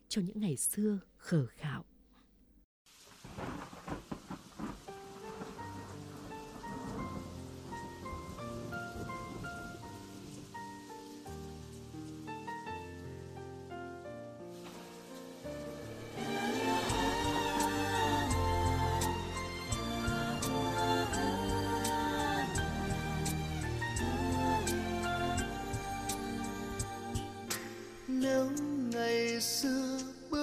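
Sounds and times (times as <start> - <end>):
speech: 0.2 - 1.9
steady rain: 2.9 - 28.2
thunder rumbling: 3.2 - 11.7, 15.6 - 26.9
melodic instrumental backing music: 5.2 - 29.4.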